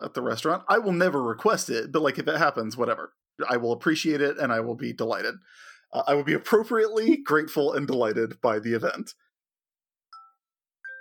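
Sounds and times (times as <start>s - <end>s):
speech: 0.1s - 9.2s
phone two-note electronic bedtime reminder chime: 10.1s - 10.9s.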